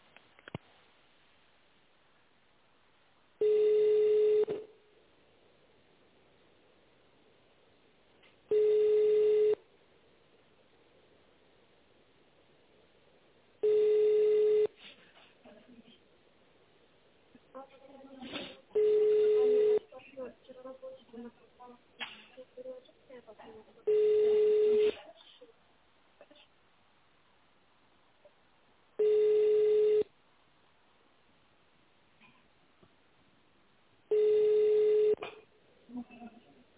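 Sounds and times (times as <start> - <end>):
telephone ringback tone while waiting for a company to answer: 3.4 - 4.6, 8.5 - 9.6, 13.6 - 14.8, 18.8 - 19.9, 23.9 - 24.9, 29.0 - 30.1, 34.1 - 35.2.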